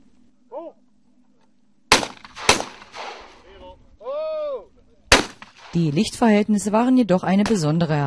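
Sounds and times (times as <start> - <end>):
shotgun blasts fired at clay targets on a shooting range: 1.9 - 3.5, 5.1 - 6.0
person shouting a short call: 3.5 - 4.7
speech: 5.7 - 8.0.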